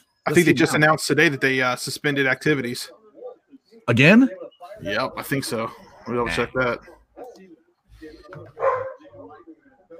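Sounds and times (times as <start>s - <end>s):
speech: 0.2s - 3.0s, 3.9s - 6.9s
dog barking excitedly: 8.6s - 9.0s.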